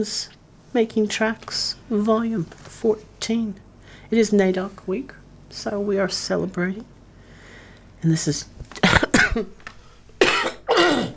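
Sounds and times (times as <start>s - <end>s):
speech: 0.0s - 7.0s, 8.0s - 8.7s, 9.3s - 9.6s
harsh coughs from a person recovering from an illness: 8.8s - 9.6s, 10.2s - 11.1s
throat clearing from a person recovering from an illness: 10.2s - 11.1s.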